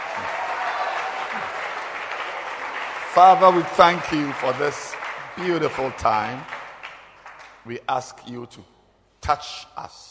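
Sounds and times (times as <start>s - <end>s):
congregation clapping hands: 0.0s - 7.9s
speech: 3.2s - 6.5s, 7.6s - 8.7s, 9.3s - 10.0s.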